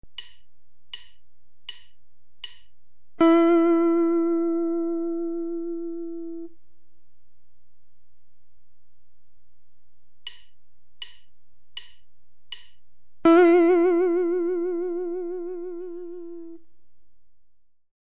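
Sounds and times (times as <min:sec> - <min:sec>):
narrow and wide guitar vibratos: 0:03.2 - 0:06.5, 0:13.2 - 0:16.6.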